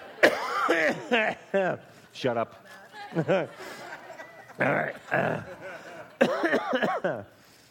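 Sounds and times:
laughter: 0.0s - 1.9s, 2.9s - 7.3s
person coughing: 0.2s - 1.2s, 6.2s - 7.2s
speech: 0.7s - 3.7s, 4.6s - 5.6s, 6.2s - 7.4s.

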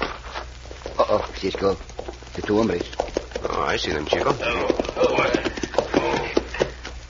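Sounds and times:
horse hooves clip-clopping at a hitch rail outside a cafe: 0.0s - 7.0s
speech: 1.0s - 3.0s, 3.6s - 5.5s
murmuring voices: 3.5s - 6.6s.

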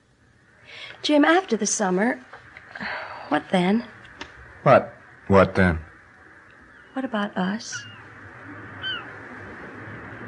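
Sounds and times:
low steady hum: 0.0s - 10.2s
speech: 1.0s - 2.3s, 3.3s - 4.0s, 4.6s - 5.9s, 7.0s - 8.0s
seagull cry: 8.8s - 9.2s.

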